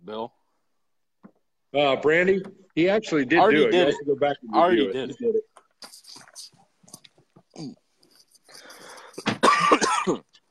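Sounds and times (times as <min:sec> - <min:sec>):
speech: 0:00.1 - 0:00.4, 0:01.7 - 0:06.0, 0:10.1 - 0:10.3
person coughing with harsh throat-clearing rasp: 0:08.7 - 0:10.3.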